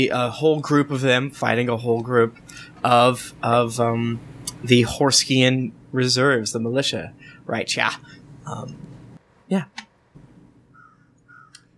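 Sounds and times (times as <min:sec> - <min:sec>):
speech: 0:00.0 - 0:08.9, 0:09.5 - 0:09.8
steady low hum: 0:00.0 - 0:11.7
crows cawing outside a window: 0:10.7 - 0:11.7.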